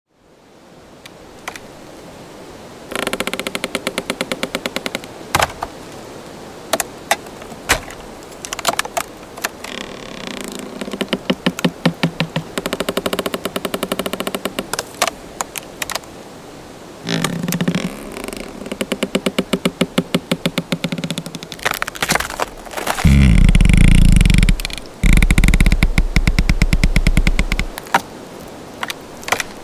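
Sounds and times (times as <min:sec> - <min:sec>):
forest textures: 0:00.1 - 0:29.6
trees creaking: 0:00.9 - 0:29.6
wood cracks: 0:01.4 - 0:01.6, 0:02.9 - 0:05.8, 0:06.7 - 0:16.1, 0:17.1 - 0:28.1, 0:28.8 - 0:29.6
wood impacts: 0:02.9 - 0:05.8, 0:06.7 - 0:16.0, 0:17.1 - 0:28.1, 0:28.8 - 0:29.6.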